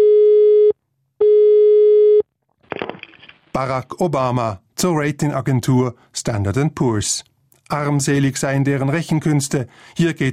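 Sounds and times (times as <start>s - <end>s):
telephone signal tone beeps: 0.0s - 2.2s
speech: 3.6s - 10.3s.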